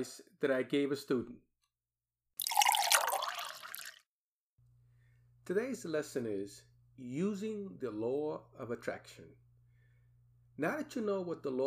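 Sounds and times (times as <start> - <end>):
speech: 0.0 - 1.5, 5.5 - 9.4, 10.6 - 11.6
hot coffee pouring into a cup: 2.4 - 4.0.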